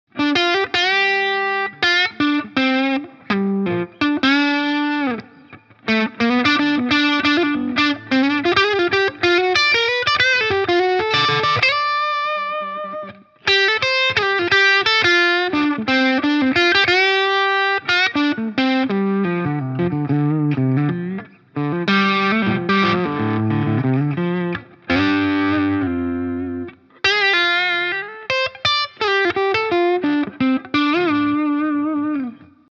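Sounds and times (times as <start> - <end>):
Fender Squier Toronado electric guitar with distorted neck pickup: 0.1 - 32.7.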